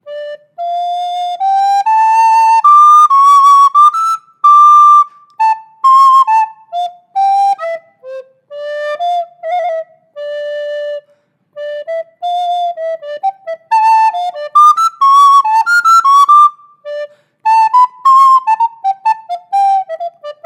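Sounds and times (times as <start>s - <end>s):
Mollenhauer 1042d student soprano recorder: 0.0s - 20.4s.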